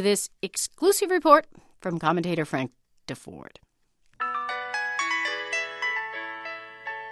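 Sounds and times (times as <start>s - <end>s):
speech: 0.0s - 3.6s
cell phone ringtone with bright electronic melody: 4.2s - 7.1s.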